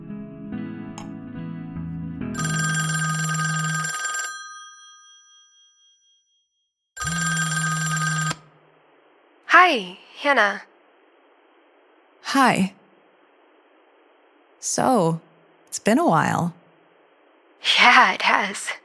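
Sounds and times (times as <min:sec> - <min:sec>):
bell-type telephone ringing: 0:02.4 - 0:06.4, 0:07.0 - 0:08.6
speech: 0:09.7 - 0:10.7, 0:12.3 - 0:12.8, 0:14.6 - 0:16.6, 0:17.7 - 0:18.8.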